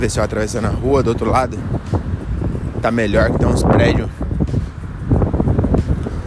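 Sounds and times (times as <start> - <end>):
speech: 0.0 - 2.0, 2.8 - 4.2
strong wind buffeting a microphone outdoors on a street in London: 0.0 - 6.2.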